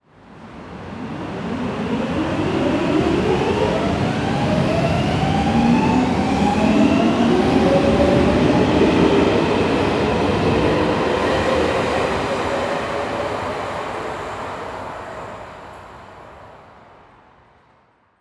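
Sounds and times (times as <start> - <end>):
metro train departing: 0.1 - 17.8.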